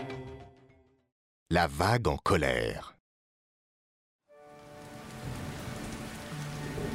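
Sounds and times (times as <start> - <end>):
speech: 1.5 - 2.9
steady rain patter on a surface: 4.4 - 6.9.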